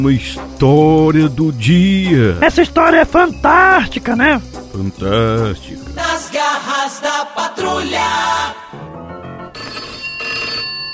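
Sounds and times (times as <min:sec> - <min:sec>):
speech: 0:00.0 - 0:08.8
telephone ringing with bright electronic tone: 0:09.1 - 0:10.9.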